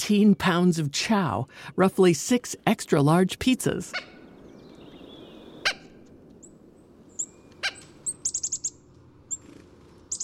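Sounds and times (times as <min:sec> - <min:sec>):
speech: 0:00.0 - 0:04.1
chickadee chirping at a sunflower seed feeder: 0:03.9 - 0:10.2.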